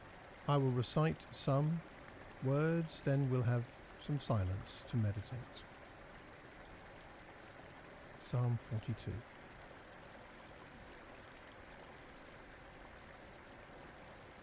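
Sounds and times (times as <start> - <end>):
river water rushing: 0.0 - 5.8
speech: 0.5 - 5.7, 8.3 - 9.3.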